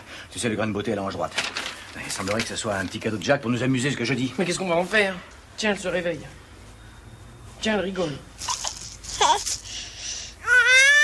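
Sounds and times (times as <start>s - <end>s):
speech: 0.4s - 6.4s, 7.6s - 8.4s
baby fussing with babbling whimpers: 8.6s - 9.7s, 10.4s - 11.0s
baby crying with loud sustained wail: 9.1s - 9.5s, 10.4s - 11.0s.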